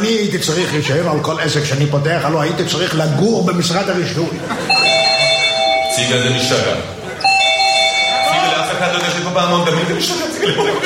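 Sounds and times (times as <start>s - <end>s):
speech: 0.0s - 5.1s, 6.0s - 7.0s, 8.9s - 10.8s
people talking and murmuring: 0.0s - 10.8s
laughter: 4.0s - 10.8s
doorbell ringing with a bright sustained chime: 4.6s - 9.2s.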